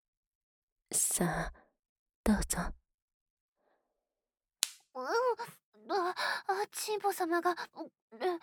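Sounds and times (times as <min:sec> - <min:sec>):
speech: 0:01.2 - 0:01.6, 0:02.3 - 0:02.8, 0:05.0 - 0:08.4
slap on a cheek: 0:04.6 - 0:04.8.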